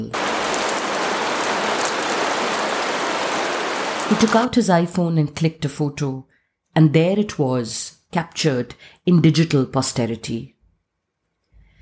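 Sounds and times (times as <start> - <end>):
steady gentle rain pattering on a surface: 0.0 - 4.5
speech: 4.1 - 10.5.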